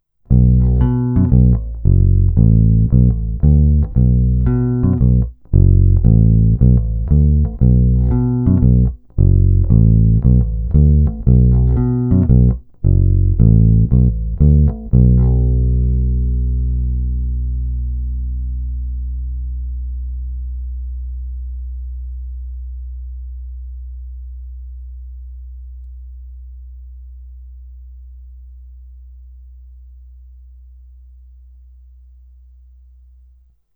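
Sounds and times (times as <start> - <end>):
guitar on Xotic XJ-1T bridge pickup: 0.3 - 19.0.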